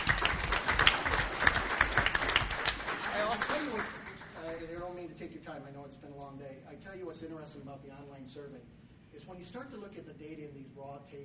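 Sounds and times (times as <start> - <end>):
crowd applauding: 0.0 - 4.7
speech: 6.0 - 11.2.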